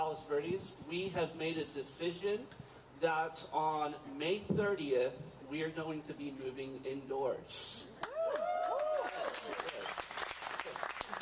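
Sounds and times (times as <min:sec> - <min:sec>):
speech: 0:00.1 - 0:08.0
cheering and whooping voices: 0:08.0 - 0:09.6
church audience in Palos Verdes applauding: 0:08.0 - 0:11.1.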